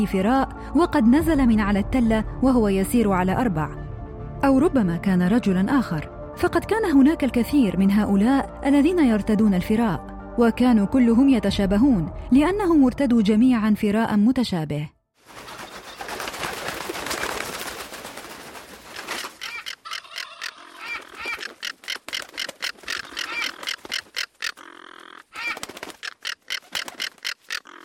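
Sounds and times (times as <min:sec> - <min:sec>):
speech: 0:00.0 - 0:03.8, 0:04.4 - 0:15.4
flock of vultures screeching after landing on a corpse: 0:19.2 - 0:27.8.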